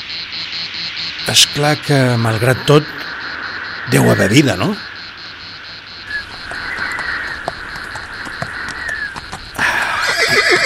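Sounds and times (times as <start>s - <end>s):
speech: 1.3s - 3.1s, 3.9s - 4.9s
clip-clop of horse hooves across an arid plain: 6.0s - 10.6s
horse neighing: 9.0s - 10.6s.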